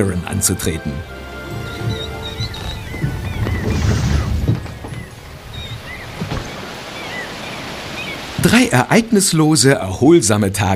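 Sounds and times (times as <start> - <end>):
speech: 0.0 - 1.2, 8.4 - 10.7
ocean water sloshing and splashing against a sailing boat hull: 1.0 - 9.5
thin high chirping cries: 1.3 - 8.4.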